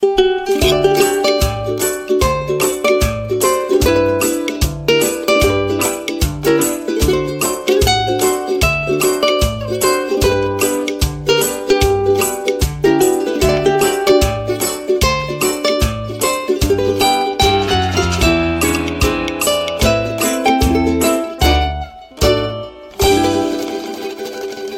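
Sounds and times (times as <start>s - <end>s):
country ukulele ringtone: 0.0s - 24.7s.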